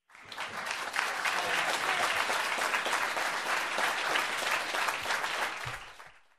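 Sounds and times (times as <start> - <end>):
group applause in agreement: 0.0 - 6.3.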